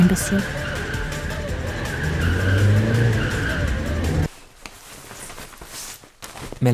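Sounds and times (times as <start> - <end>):
car engine rumble: 0.0 - 4.3
speech: 0.1 - 0.7, 6.6 - 6.7
car tires squealing as it spins in circles on ice: 1.8 - 4.3.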